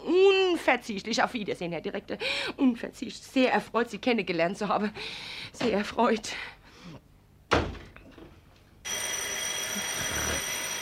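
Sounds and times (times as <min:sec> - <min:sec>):
speech: 0:00.7 - 0:06.6
old telephone bell ringing: 0:08.8 - 0:10.8.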